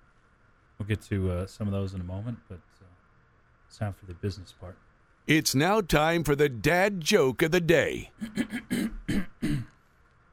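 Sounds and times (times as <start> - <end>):
speech: 0.8 - 2.9, 3.7 - 9.7
rough throat-clearing bursts: 8.2 - 9.8.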